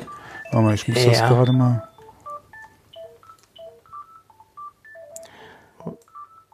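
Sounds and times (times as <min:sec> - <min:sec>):
telephone ringing with melodic electronic beeps: 0:00.0 - 0:06.5
speech: 0:00.5 - 0:01.9.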